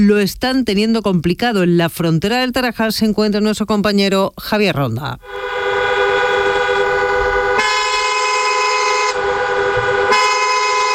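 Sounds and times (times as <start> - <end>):
speech: 0.0 - 5.6
car horns honking at a busy border crossing with long queues: 5.2 - 10.9.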